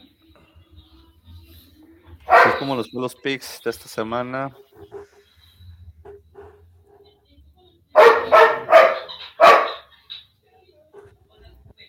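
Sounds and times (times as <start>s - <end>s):
faint low murmuring: 0.0s - 11.8s
dog barking: 2.2s - 2.8s, 8.0s - 9.9s
speech: 2.6s - 4.7s.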